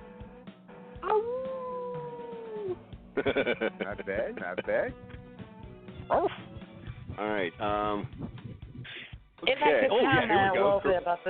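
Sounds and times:
dog howling outdoors: 0:01.0 - 0:02.8
laughter: 0:03.2 - 0:04.9
speech: 0:03.2 - 0:05.2, 0:06.1 - 0:06.3, 0:07.2 - 0:08.4, 0:09.5 - 0:11.2.

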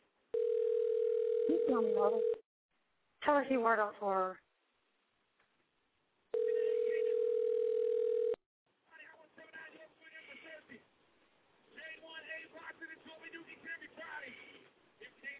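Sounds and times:
telephone dial tone on a call-in line: 0:00.4 - 0:02.4, 0:06.4 - 0:08.4
speech: 0:01.7 - 0:02.4, 0:03.2 - 0:04.4.

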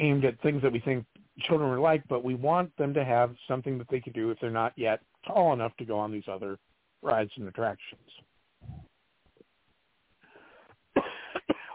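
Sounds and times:
speech: 0:00.0 - 0:08.9
throaty rumbling and breathy noises: 0:08.6 - 0:08.9
person coughing: 0:11.0 - 0:11.7.

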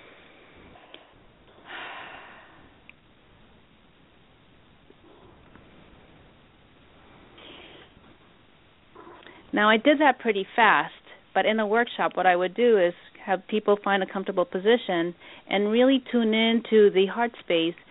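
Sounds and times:
slow deep breaths during a guided meditation: 0:00.0 - 0:02.8, 0:07.0 - 0:08.1, 0:15.2 - 0:15.5
speech: 0:09.6 - 0:17.8.

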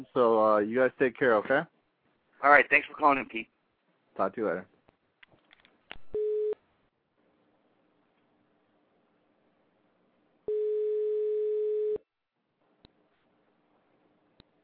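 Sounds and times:
speech: 0:00.0 - 0:01.8, 0:02.4 - 0:03.5, 0:04.2 - 0:04.7
phone line beeping after a disconnected call: 0:06.1 - 0:06.6, 0:10.5 - 0:12.0.

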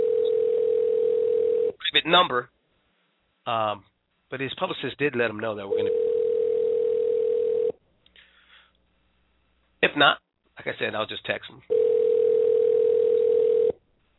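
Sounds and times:
outgoing phone call ringing tone: 0:00.0 - 0:01.8, 0:05.7 - 0:07.8, 0:11.7 - 0:13.8
faint noise: 0:00.0 - 0:14.1
speech: 0:02.0 - 0:02.6, 0:03.4 - 0:06.0, 0:09.9 - 0:11.9.

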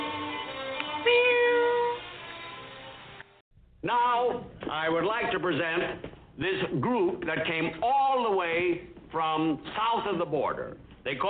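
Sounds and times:
cat meowing: 0:01.0 - 0:02.0
speech: 0:03.8 - 0:11.2.

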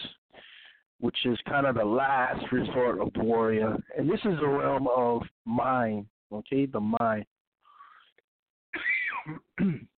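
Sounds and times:
speech: 0:01.0 - 0:07.3, 0:09.2 - 0:09.9
harsh breathy coughs from a man with mild asthma: 0:08.8 - 0:09.9.

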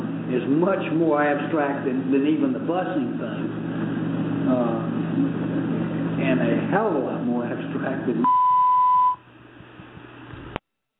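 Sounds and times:
speech: 0:00.3 - 0:03.8, 0:04.5 - 0:08.4
censorship bleep over a slur in a recorded speech: 0:08.2 - 0:09.2.

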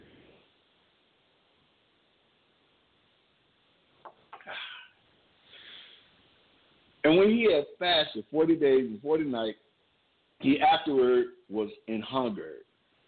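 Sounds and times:
person coughing: 0:04.4 - 0:04.9
rasping exhale: 0:04.5 - 0:06.1
person reading a Bible passage aloud: 0:07.0 - 0:09.6, 0:10.4 - 0:12.6
speech: 0:07.1 - 0:09.6, 0:10.4 - 0:12.7.

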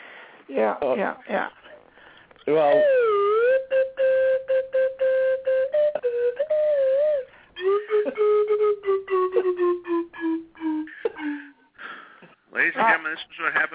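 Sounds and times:
speech: 0:00.5 - 0:01.6, 0:02.4 - 0:03.2, 0:12.7 - 0:13.7
slide whistle playing a Christmas carol: 0:02.6 - 0:11.7.

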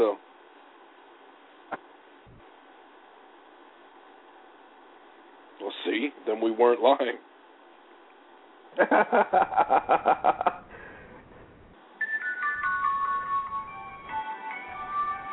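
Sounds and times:
speech: 0:00.0 - 0:00.3, 0:06.0 - 0:07.3, 0:08.8 - 0:10.6
laughter: 0:08.8 - 0:10.7
mobile phone ringtone: 0:12.0 - 0:15.3.

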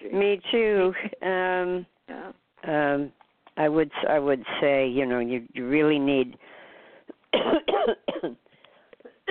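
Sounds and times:
speech: 0:00.1 - 0:01.9, 0:04.1 - 0:06.4
person coughing harshly: 0:07.3 - 0:08.4, 0:09.0 - 0:09.2.

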